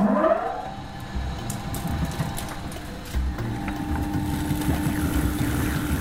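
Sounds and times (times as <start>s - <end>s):
stone mill grinding rye grain into flour: 1.2s - 5.9s.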